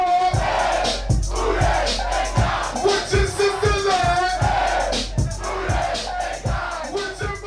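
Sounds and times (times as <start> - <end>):
packed crowd cheering and chanting at a hip hop concert in Miami: 0.0 - 7.4
pounding hip hop bass beat: 0.0 - 7.4.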